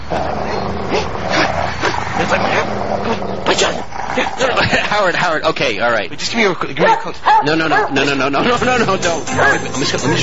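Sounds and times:
dog growling and barking with snarling yips: 0:00.0 - 0:04.6
speech: 0:04.4 - 0:10.2.

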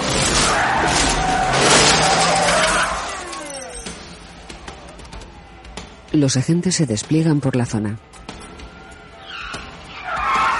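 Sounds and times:
police car tires squealing and skidding: 0:00.0 - 0:03.9, 0:08.7 - 0:10.5
speech: 0:06.2 - 0:08.2.

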